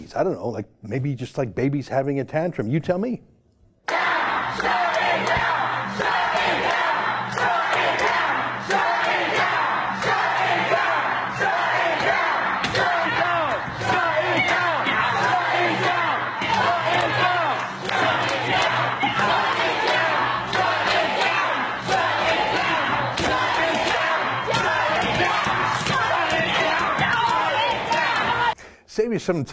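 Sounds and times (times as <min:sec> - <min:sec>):
speech: 0:00.1 - 0:03.3, 0:04.6 - 0:06.9, 0:29.0 - 0:29.5
crowd of protesting activists shouting and roaring at the Supreme Court: 0:03.9 - 0:28.6
people pounding and clawing at heavy bronze court doors: 0:11.5 - 0:28.5.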